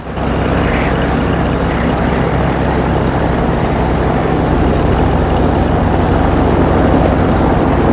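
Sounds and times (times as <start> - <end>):
aeroplane taxiing away across wet tarmac: 0.0 - 7.9.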